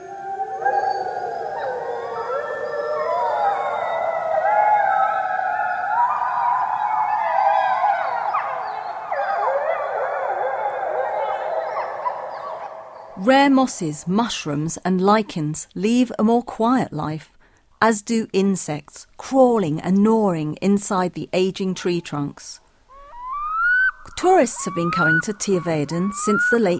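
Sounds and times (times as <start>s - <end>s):
pack of wolves howling: 0.0s - 13.7s, 23.0s - 26.7s
speech: 13.3s - 22.6s, 24.2s - 26.7s.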